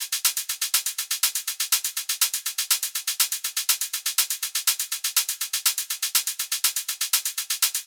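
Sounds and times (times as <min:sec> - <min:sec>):
shakers: 0:00.0 - 0:07.8.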